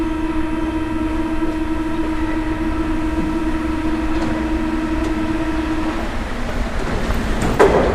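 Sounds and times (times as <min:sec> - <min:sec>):
metro train rumbling along the rails: 0:00.0 - 0:07.9
tonal hum: 0:00.0 - 0:07.9
rattling clatter: 0:04.0 - 0:07.9.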